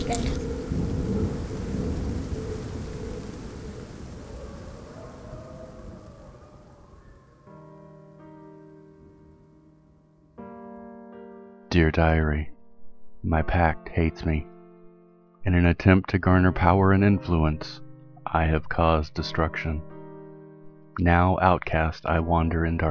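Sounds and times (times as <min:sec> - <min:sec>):
steady rainfall: 0:00.0 - 0:07.0
low rumble of thunder: 0:00.0 - 0:07.4
speech: 0:00.1 - 0:00.4, 0:11.8 - 0:12.5, 0:13.2 - 0:14.5, 0:15.4 - 0:19.9, 0:21.0 - 0:22.8.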